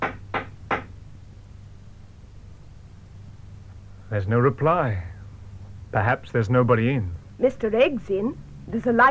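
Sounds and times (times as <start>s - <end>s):
firm knocks on a wooden door: 0.0s - 1.0s
faint hum: 0.0s - 9.1s
speech: 4.1s - 5.1s, 5.9s - 9.1s.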